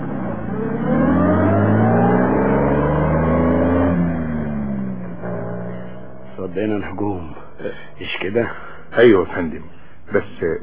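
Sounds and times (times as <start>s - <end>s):
car engine revving as it accelerates away at top speed: 0.0s - 9.0s
speech: 6.6s - 10.6s.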